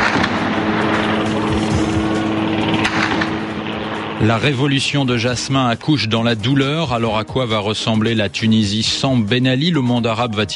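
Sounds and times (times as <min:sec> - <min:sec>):
noisy outdoor city background: 0:00.0 - 0:08.4
helicopter flying over a city: 0:00.0 - 0:09.3
speech: 0:04.2 - 0:10.5.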